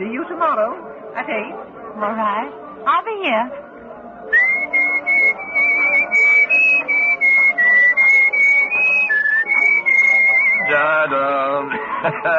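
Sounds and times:
speech: 0.0 - 3.6, 10.7 - 12.3
person whistling a simple tune: 4.3 - 10.8
laughter: 5.1 - 12.3.

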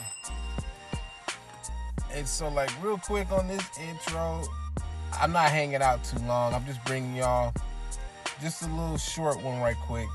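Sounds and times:
bell ringing: 0.0 - 2.0
speech: 2.2 - 7.7, 8.4 - 10.1.

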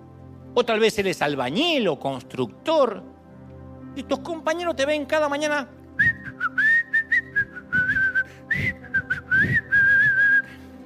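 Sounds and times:
speech: 0.6 - 3.2, 4.0 - 5.8
person whistling a melody: 6.0 - 10.7.

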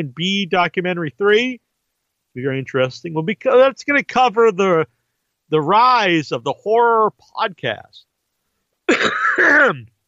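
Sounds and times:
speech: 0.0 - 1.6, 2.4 - 8.1, 8.9 - 9.9
cough into a microphone: 8.9 - 9.9.

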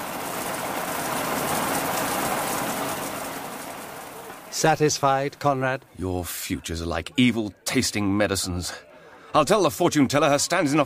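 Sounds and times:
steady rain falling: 0.0 - 5.4
speech: 4.6 - 10.8.

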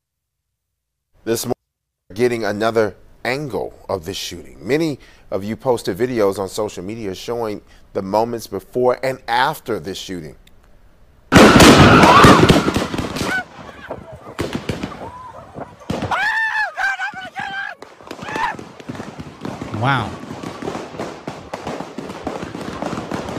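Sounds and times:
speech: 1.2 - 1.6, 2.2 - 10.4, 19.8 - 20.2
excited voices and crowd noise: 11.5 - 18.6.

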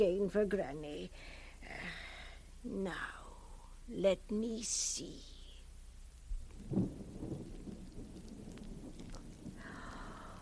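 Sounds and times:
speech: 0.0 - 2.0, 2.6 - 3.2, 3.9 - 5.3, 6.6 - 7.3
steady rain outside during a storm: 1.1 - 10.4
low thunder rumble: 6.3 - 10.4.

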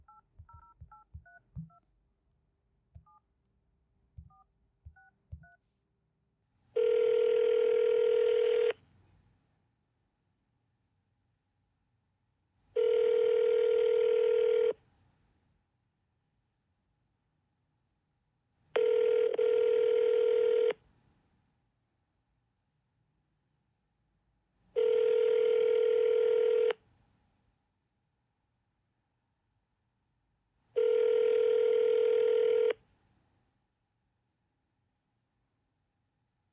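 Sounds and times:
telephone ringback tone: 6.8 - 8.8, 12.8 - 14.8, 18.8 - 20.8, 24.8 - 26.7, 30.8 - 32.8.

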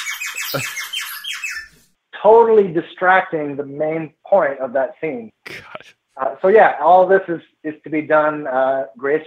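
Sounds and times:
bird whistle blown hard by a trap drummer: 0.0 - 1.9
speech: 0.5 - 0.9, 2.2 - 9.2.

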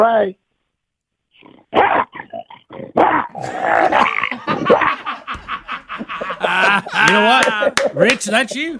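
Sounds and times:
speech: 0.0 - 0.4, 1.4 - 5.2, 6.0 - 8.7
person imitating a lion roar: 1.7 - 4.8
laughter: 4.1 - 8.7.

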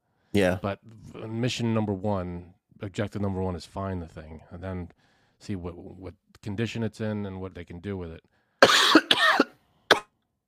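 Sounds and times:
speech: 0.3 - 8.3
harsh coughs: 8.6 - 10.1.

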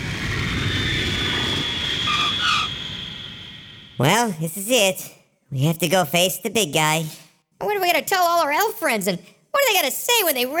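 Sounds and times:
airplane engine roar on final approach for landing: 0.0 - 4.2
speech: 4.0 - 10.5.

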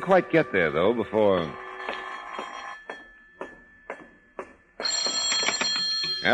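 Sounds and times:
speech: 0.1 - 2.0
telephone bell ringing in an apartment: 1.5 - 3.8, 4.8 - 6.3.

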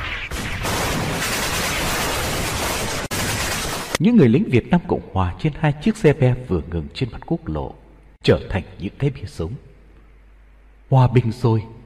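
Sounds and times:
dense barrage of mixed gunfire from many kinds of guns: 0.0 - 4.0
speech: 4.0 - 9.7, 10.9 - 11.8.

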